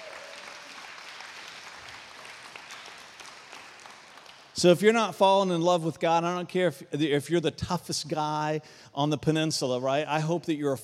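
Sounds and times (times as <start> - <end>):
audience clapping: 0.0 - 4.8
speech: 4.6 - 10.8.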